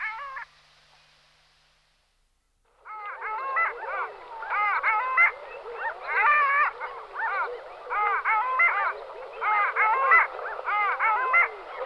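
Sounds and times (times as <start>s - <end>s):
Clangula hyemalis long-tailed duck nasal yodelling calls: 2.9s - 11.8s.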